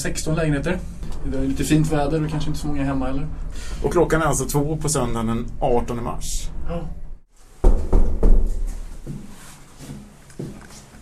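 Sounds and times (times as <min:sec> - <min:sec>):
speech: 0:00.0 - 0:07.0
firm knocking on an apartment door: 0:07.6 - 0:09.2.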